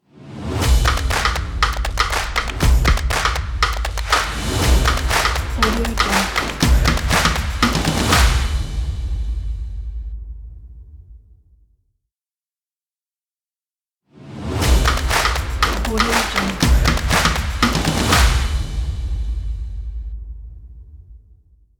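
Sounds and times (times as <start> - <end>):
upbeat stomp percussion logo jingle: 0.6 - 9.5, 14.6 - 19.6.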